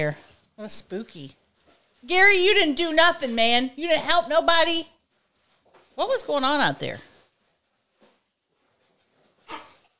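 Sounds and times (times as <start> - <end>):
speech: 0.0 - 1.4, 2.0 - 4.9, 6.0 - 7.1
dog barking: 9.5 - 9.8.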